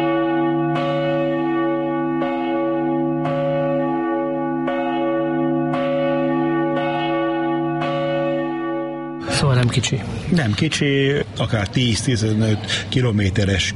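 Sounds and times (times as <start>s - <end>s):
large church bell tolling: 0.0s - 9.9s
speech: 9.6s - 13.7s.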